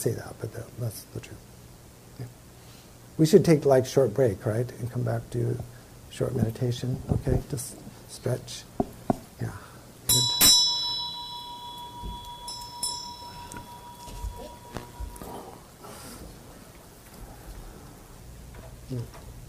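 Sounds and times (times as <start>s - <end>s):
speech: 0.0s - 1.6s, 2.2s - 2.4s, 3.2s - 8.7s, 9.4s - 10.4s
inexpensive meditation bell ringing: 10.1s - 15.8s
soft movement: 11.2s - 17.8s.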